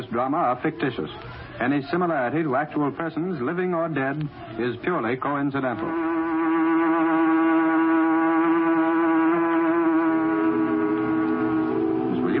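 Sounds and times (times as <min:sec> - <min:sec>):
speech: 0:00.0 - 0:06.1
factory whistle blowing: 0:05.8 - 0:12.3.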